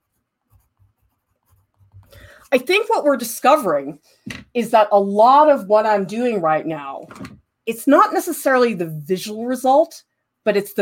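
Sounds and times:
soft scratching of writing on paper with gum arabic: 0:00.0 - 0:02.2
speech: 0:02.4 - 0:10.7.

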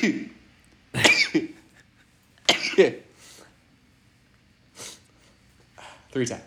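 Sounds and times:
speech: 0:00.0 - 0:00.3, 0:01.3 - 0:01.5, 0:02.8 - 0:03.0, 0:06.1 - 0:06.4
person sneezing: 0:01.0 - 0:01.5, 0:02.5 - 0:03.4
quiet breaths: 0:04.7 - 0:06.2.

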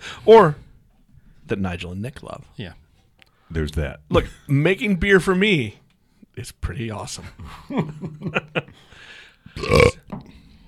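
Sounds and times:
speech: 0:00.2 - 0:00.6, 0:01.5 - 0:02.8, 0:03.5 - 0:05.8, 0:06.4 - 0:10.4
loud drawn-out burp from a guest: 0:09.6 - 0:10.1.

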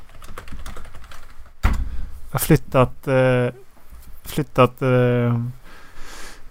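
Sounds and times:
rapid typing on a computer keyboard: 0:00.0 - 0:01.3
speech: 0:02.3 - 0:03.6, 0:04.2 - 0:05.6.

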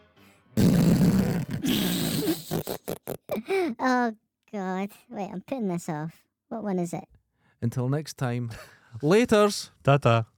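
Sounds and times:
fart sound: 0:00.6 - 0:03.4
speech: 0:03.7 - 0:10.3.

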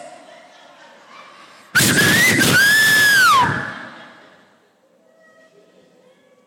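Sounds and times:
loud piercing human whistle given as a signal: 0:01.8 - 0:03.8
laughter: 0:03.2 - 0:04.8.

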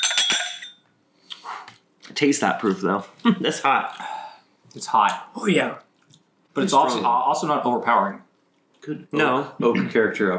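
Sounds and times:
glasses of high-proof oak-aged spirit clinking in a toast: 0:00.0 - 0:00.9
speech: 0:02.2 - 0:04.1, 0:04.7 - 0:05.8, 0:06.6 - 0:08.2, 0:08.8 - 0:10.3.

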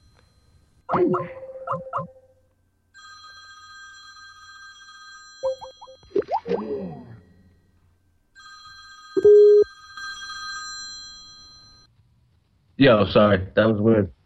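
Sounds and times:
speech: 0:00.9 - 0:02.2, 0:12.8 - 0:14.2
home landline telephone ringing in electronic bursts: 0:02.9 - 0:06.2, 0:07.2 - 0:11.9.

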